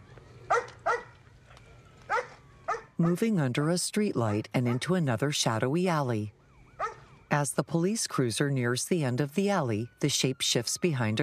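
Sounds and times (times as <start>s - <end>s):
chained-up black dog barking: 0.5s - 1.1s, 2.1s - 3.2s, 6.8s - 7.0s
speech: 3.0s - 6.4s, 7.3s - 11.2s.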